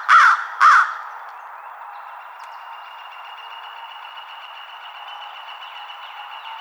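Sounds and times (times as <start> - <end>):
American Crow harsh hoarse caws: 0.0 - 1.1.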